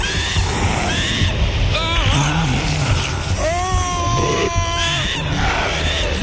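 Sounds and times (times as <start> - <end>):
rushing rumbling roar of an earthquake: 0.0 - 6.2
two people screaming together: 0.9 - 6.0
person yelping: 3.4 - 5.2.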